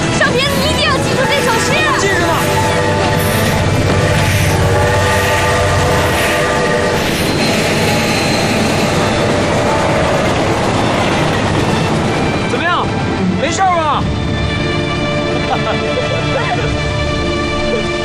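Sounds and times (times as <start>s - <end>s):
train horn blaring in a long sustained blast: 0.0s - 13.4s
train rail cars rumbling and rattling past: 0.0s - 18.0s
laughter: 15.1s - 17.0s.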